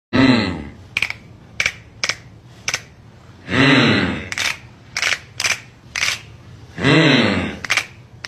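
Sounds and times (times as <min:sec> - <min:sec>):
person humming: 0:00.1 - 0:00.8, 0:03.4 - 0:04.4, 0:06.7 - 0:07.7
finger snaps: 0:01.0 - 0:02.9.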